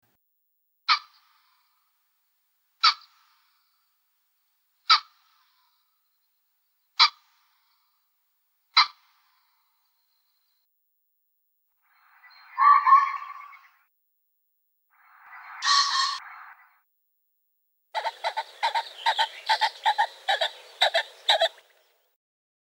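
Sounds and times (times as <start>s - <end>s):
common pheasant Phasianus colchicus calls: 0.9s - 1.8s, 2.8s - 3.8s, 4.8s - 5.9s, 6.9s - 7.9s, 8.7s - 9.9s, 12.2s - 13.7s, 15.6s - 16.2s, 18.0s - 22.1s.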